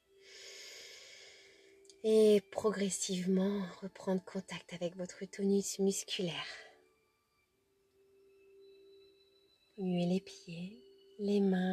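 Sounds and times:
long airy breath: 0:00.2 - 0:01.8
speech: 0:02.0 - 0:06.7, 0:09.8 - 0:11.7.

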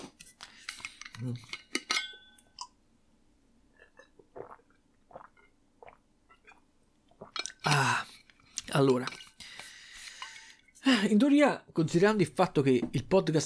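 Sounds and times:
glass or bottle clinking while handled: 0:01.0 - 0:02.7, 0:07.2 - 0:07.8
speech: 0:01.2 - 0:01.6, 0:08.8 - 0:09.2, 0:11.0 - 0:13.4
person gulping a sip of water: 0:03.7 - 0:08.7.

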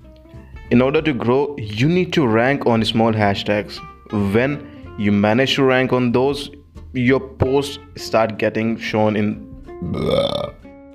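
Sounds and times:
speech: 0:00.7 - 0:10.6
person burping: 0:09.8 - 0:10.9.

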